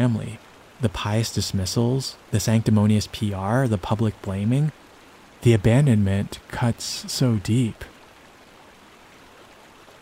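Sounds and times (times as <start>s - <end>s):
speech: 0.0s - 4.8s, 5.4s - 7.9s
creek water flowing: 0.0s - 10.0s.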